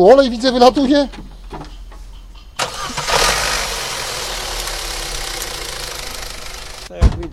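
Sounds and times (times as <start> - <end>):
speech: 0.0 - 1.2
worn oil-leaking car engine cranking, revving and idling roughly: 2.5 - 6.9.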